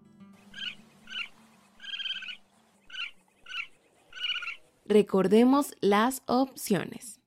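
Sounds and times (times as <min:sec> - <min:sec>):
raccoons chittering in high-pitched trills: 0:00.4 - 0:04.9
speech: 0:04.9 - 0:07.1.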